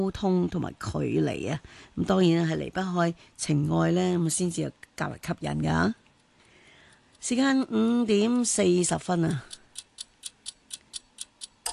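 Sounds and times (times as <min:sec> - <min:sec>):
speech: 0:00.0 - 0:06.0, 0:07.2 - 0:09.6
clock ticking: 0:09.1 - 0:11.7.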